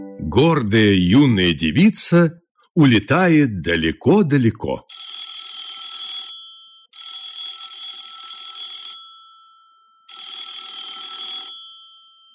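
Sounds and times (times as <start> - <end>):
speech: 0.4 - 5.0
telephone ringing with bright metallic jangling: 4.9 - 9.0, 10.1 - 11.8.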